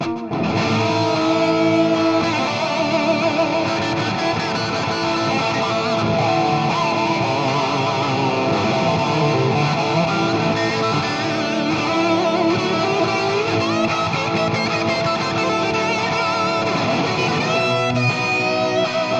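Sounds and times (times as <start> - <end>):
rock guitar through a JCM800 amplifier: 0.0 - 19.1.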